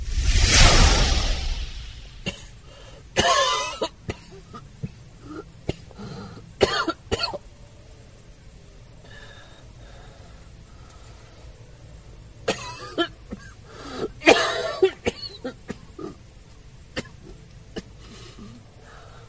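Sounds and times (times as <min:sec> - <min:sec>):
faint noise: 0:00.0 - 0:19.2
person coughing heavily: 0:03.2 - 0:07.4, 0:12.5 - 0:16.2.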